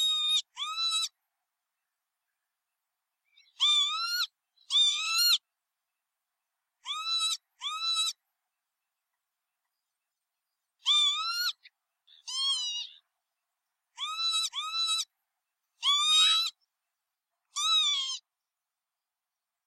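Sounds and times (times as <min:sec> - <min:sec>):
northern lapwing nasal wheezy calls: 0:00.0 - 0:01.2, 0:03.2 - 0:05.4, 0:06.8 - 0:08.2, 0:10.8 - 0:13.1, 0:13.9 - 0:15.1, 0:15.8 - 0:16.7, 0:17.5 - 0:18.3.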